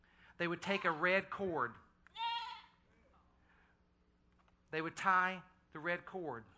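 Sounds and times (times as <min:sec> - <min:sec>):
quiet noise: 0:00.0 - 0:06.5
speech: 0:00.4 - 0:01.8, 0:04.7 - 0:06.5
goat bleating loudly: 0:02.2 - 0:02.7.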